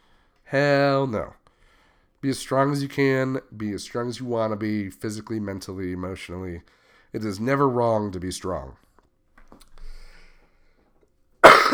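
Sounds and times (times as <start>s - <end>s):
speech: 0.5s - 1.4s, 2.2s - 8.8s
faint clicks and rustles: 8.8s - 11.2s
loud harsh cough: 11.4s - 11.7s.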